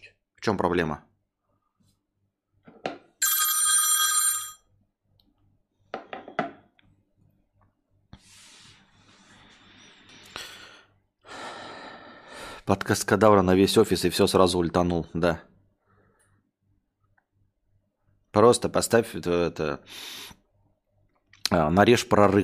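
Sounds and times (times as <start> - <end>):
speech: 0.4 - 1.1, 12.7 - 15.5, 18.4 - 20.4, 21.5 - 22.4
telephone bell ringing loudly: 3.2 - 4.7.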